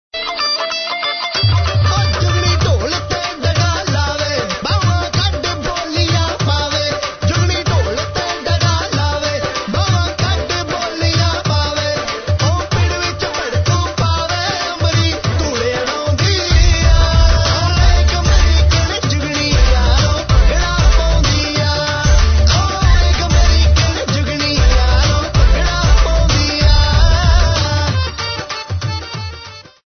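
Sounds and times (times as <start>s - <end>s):
Punjabi song: 0.1s - 29.8s.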